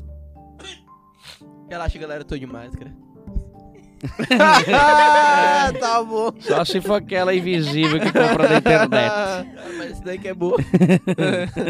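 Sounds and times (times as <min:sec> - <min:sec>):
person sneezing: 0:00.6 - 0:01.4
speech: 0:01.4 - 0:03.1, 0:04.0 - 0:11.6
laughter: 0:04.0 - 0:11.6.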